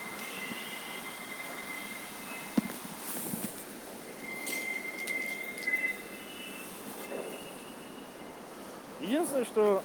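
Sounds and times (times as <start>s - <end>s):
rail clack: 0.0s - 8.5s
moving train wheels rumbling on rails heard from inside: 0.0s - 9.8s
faint high metallic squeals: 0.1s - 2.6s, 4.0s - 8.4s
speech: 9.1s - 9.8s.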